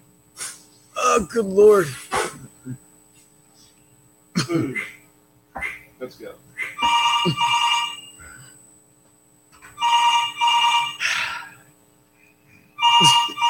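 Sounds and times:
speech: 1.2s - 2.0s, 2.6s - 2.8s, 4.5s - 5.0s, 5.6s - 7.6s
telephone bell ringing in double bursts: 6.8s - 8.2s, 9.8s - 11.0s, 12.8s - 13.4s.

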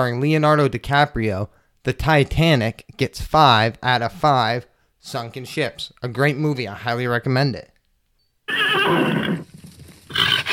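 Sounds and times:
speech: 0.0s - 7.7s, 8.5s - 9.4s
horse whinnying and neighing: 8.5s - 9.5s, 10.1s - 10.5s.

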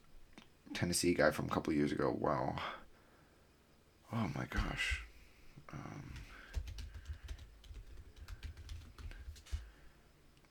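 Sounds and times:
soft hiss: 0.0s - 10.4s
speech: 0.8s - 2.8s, 4.1s - 5.0s, 5.7s - 6.3s
typing on a computer keyboard: 6.1s - 9.7s.

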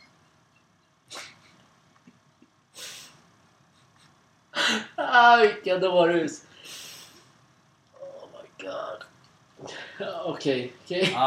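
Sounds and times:
person sneezing: 1.1s - 1.6s
speech: 5.2s - 6.5s, 10.0s - 11.2s.

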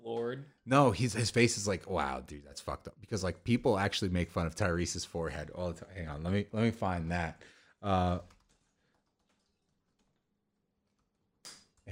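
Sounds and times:
speech: 0.3s - 8.4s
typing on a computer keyboard: 8.2s - 11.9s.

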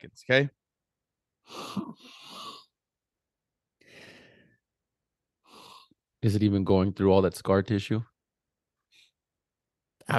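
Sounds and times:
speech: 0.0s - 0.6s, 1.5s - 2.6s, 6.2s - 8.1s
person inhaling deeply through the nose over Vicks VapoRub: 3.8s - 4.6s.

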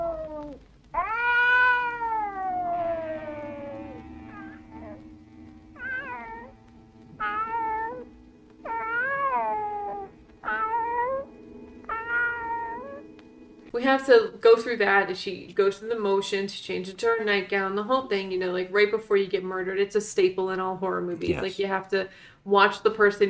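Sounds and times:
cats meowing to be let in through a door: 0.0s - 5.0s, 5.8s - 6.5s, 7.2s - 11.3s, 11.9s - 13.1s
speech: 13.8s - 23.2s.

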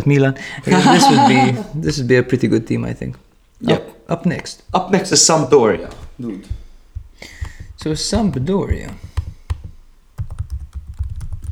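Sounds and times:
laughter: 0.0s - 2.9s
speech: 0.0s - 6.6s, 7.2s - 9.1s
aggressive typing on a computer keyboard: 4.4s - 11.5s.

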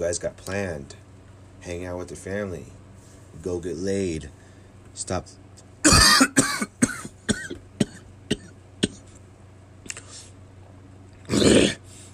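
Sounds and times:
speech: 0.0s - 1.0s, 1.6s - 4.4s, 5.0s - 5.4s
person coughing to clear something stuck in the throat: 5.8s - 9.1s.

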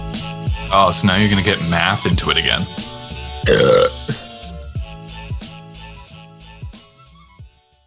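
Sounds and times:
light bouncy music with a steady plucked rhythm: 0.0s - 7.8s
speech: 0.7s - 2.8s, 3.4s - 4.2s
loud drawn-out burp after drinking beer: 3.4s - 4.2s.

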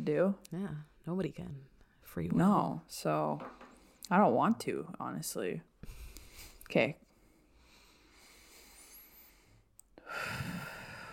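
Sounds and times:
speech: 0.0s - 6.0s, 6.7s - 7.0s
deep cleansing breath: 5.8s - 11.1s.

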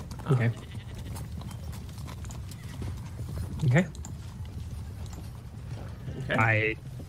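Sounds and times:
horse hooves clip-clopping: 0.0s - 7.0s
horse whinnying: 0.1s - 3.0s
speech: 0.3s - 0.7s, 3.6s - 4.0s, 6.3s - 6.9s.

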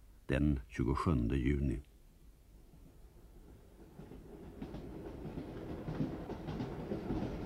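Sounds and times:
speech: 0.3s - 1.9s
northbound night train rumbling on rails leaving Alvesta station: 2.6s - 7.4s.

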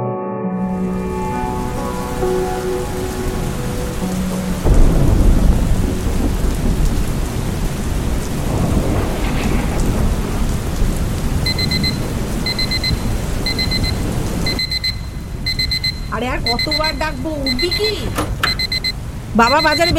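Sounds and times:
constant heavy rain: 0.7s - 19.9s
thunder rumble: 0.7s - 19.9s
alarm clock ringing with high electronic beeping: 11.4s - 19.9s
speech: 19.4s - 19.9s.

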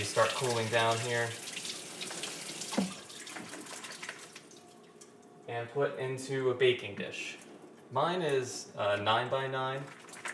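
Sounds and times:
speech: 0.0s - 1.5s, 2.8s - 3.0s, 5.5s - 10.0s
cold tap water running into a sink over pasta: 0.0s - 4.8s.

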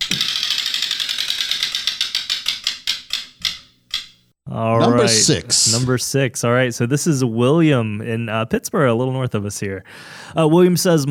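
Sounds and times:
spinning prize wheel clicking against its pointer: 0.0s - 4.2s
speech: 4.5s - 11.0s.

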